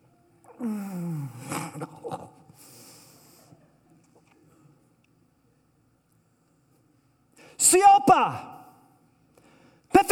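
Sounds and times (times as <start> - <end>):
person yawning: 0.5 - 2.6
speech: 0.6 - 1.0, 7.7 - 8.5.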